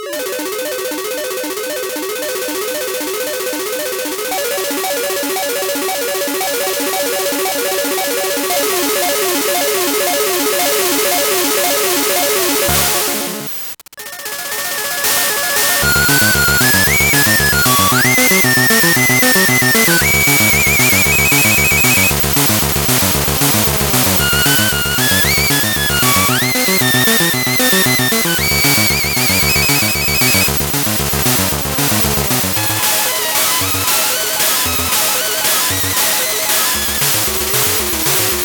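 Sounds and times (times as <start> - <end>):
Game Boy sound samples: 0.1 - 38.4.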